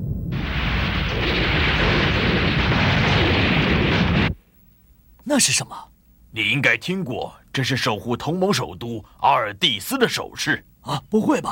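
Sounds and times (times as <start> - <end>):
warship fleet artillery bombardment explosions on battle satellites in orbit: 0.0 - 4.4
speech: 5.4 - 11.5.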